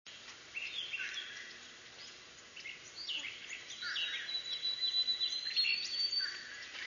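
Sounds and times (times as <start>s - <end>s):
Prairie Warbler singing: 0.1s - 6.8s
Common Crow calling: 0.9s - 1.6s, 3.1s - 6.8s.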